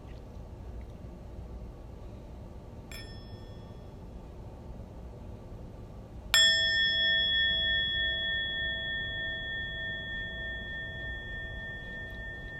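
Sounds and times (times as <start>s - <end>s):
meditation bell struck during a guided meditation: 2.9s - 4.0s, 6.3s - 12.5s.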